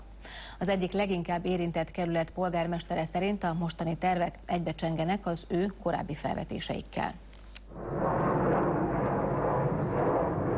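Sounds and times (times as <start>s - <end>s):
speech: 0.6s - 7.3s
jet aircraft roaring overhead: 7.7s - 10.5s.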